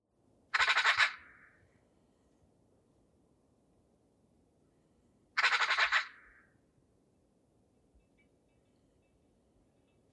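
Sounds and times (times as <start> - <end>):
Eurasian magpie Pica pica giving a harsh rasping call: 0.6 - 1.3, 5.4 - 6.2.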